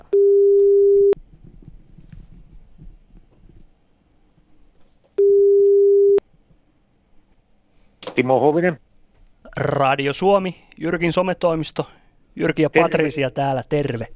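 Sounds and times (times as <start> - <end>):
ringback tone of an outgoing phone call on a radio show: 0.1 - 1.2, 5.2 - 6.2
speech: 8.2 - 8.8, 9.6 - 14.1.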